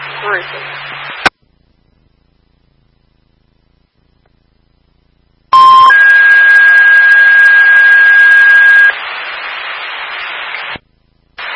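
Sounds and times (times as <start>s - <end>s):
radio hiss and static: 0.0s - 1.5s, 5.5s - 11.5s
fire dispatch alert tone over a radio: 5.5s - 8.9s.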